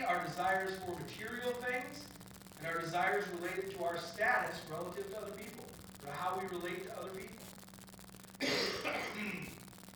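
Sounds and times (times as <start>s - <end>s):
faint low hum: 0.0s - 9.9s
speech: 0.4s - 7.6s, 8.4s - 9.6s
throat clearing with raspy cough-like burst: 8.4s - 9.5s.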